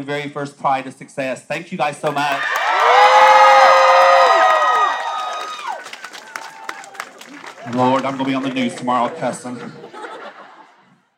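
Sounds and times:
speech: 0.0s - 2.9s, 7.7s - 10.0s
large crowd screaming and cheering: 2.2s - 9.6s
scattered whoops from a crowd: 2.4s - 7.7s
scattered clapping: 4.3s - 9.5s
laughter: 6.8s - 11.1s.

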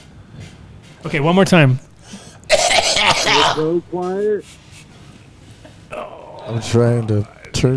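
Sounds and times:
speech: 1.0s - 1.9s, 3.6s - 4.6s, 6.5s - 7.7s
man clearing throat: 2.5s - 3.7s
man coughing harshly: 2.5s - 3.8s.

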